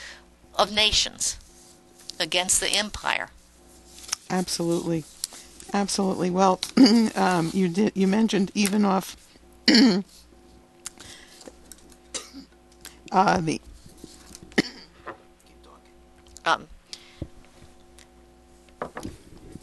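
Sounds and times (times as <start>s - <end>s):
speech: 0.6s - 1.4s, 2.2s - 3.4s, 4.3s - 10.2s, 13.1s - 13.6s, 16.5s - 16.7s
raspy throat clearing: 6.8s - 7.1s, 9.6s - 10.1s, 12.1s - 12.6s, 14.6s - 15.0s
loud person coughing: 6.8s - 7.2s, 9.7s - 10.1s, 12.1s - 12.5s, 14.6s - 15.0s.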